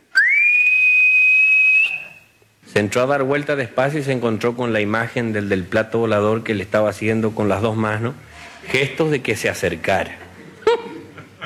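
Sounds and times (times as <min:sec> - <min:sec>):
eerie ghostly high whistle: 0:00.1 - 0:02.4
speech: 0:02.8 - 0:10.2
laughter: 0:10.0 - 0:11.4.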